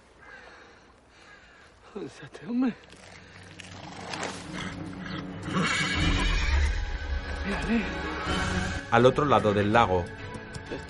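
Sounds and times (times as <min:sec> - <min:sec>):
speech: 0:02.0 - 0:03.2, 0:07.5 - 0:10.2
horse whinnying shrilly while rearing: 0:03.8 - 0:06.9.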